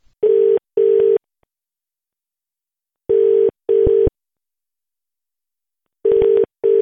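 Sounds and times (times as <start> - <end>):
telephone ringing tone heard down the line: 0.2 - 1.2, 3.1 - 4.1, 6.0 - 6.8.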